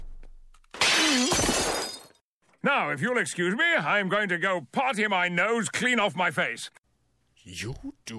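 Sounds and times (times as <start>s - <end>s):
breakaway glass shattering: 0.8s - 2.2s
speech: 2.7s - 6.8s, 7.4s - 8.1s.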